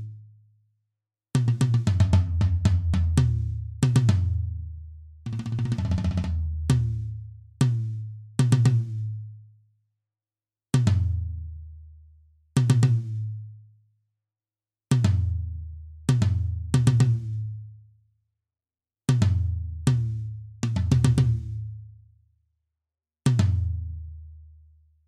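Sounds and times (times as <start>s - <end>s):
dry tom drum: 1.4s - 4.6s, 5.3s - 9.2s, 10.8s - 11.5s, 14.9s - 17.5s, 19.1s - 21.6s, 23.3s - 23.9s.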